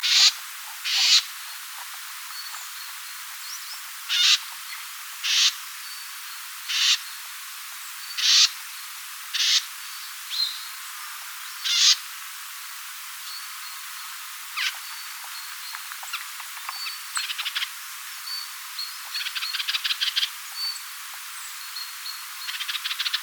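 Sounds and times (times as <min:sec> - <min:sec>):
Kruper's nuthatch calling: 0:00.0 - 0:01.7, 0:02.3 - 0:05.6, 0:06.7 - 0:07.0, 0:08.1 - 0:08.5, 0:09.4 - 0:09.6, 0:11.6 - 0:12.0, 0:14.6 - 0:20.9.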